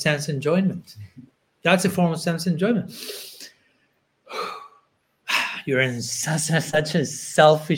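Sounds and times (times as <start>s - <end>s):
speech: 0.0s - 3.3s, 5.6s - 7.7s
breathy puff: 2.9s - 3.5s.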